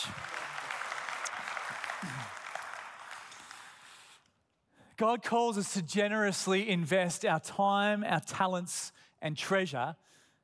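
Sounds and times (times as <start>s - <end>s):
crowd applauding: 0.0s - 4.3s
speech: 5.0s - 10.4s.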